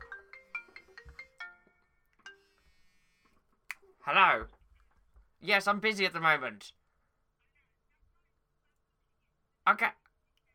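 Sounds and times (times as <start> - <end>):
mobile phone ringtone with bright electronic melody: 0.0 - 2.6
speech: 4.1 - 4.6, 5.4 - 6.8, 9.6 - 10.0.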